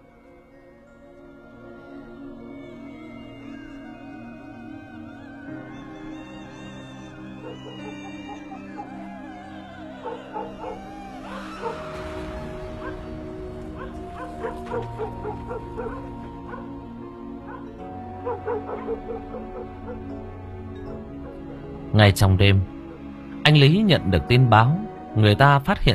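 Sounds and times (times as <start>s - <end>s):
sustained musical tones: 0.0s - 25.9s
black dog barking loudly: 7.4s - 12.0s, 12.8s - 20.2s
speech: 21.9s - 22.7s, 23.5s - 25.9s.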